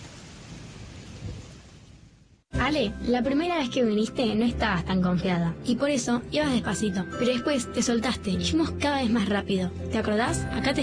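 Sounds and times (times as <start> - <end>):
steady rain: 0.0 - 2.5
speech: 2.7 - 10.8.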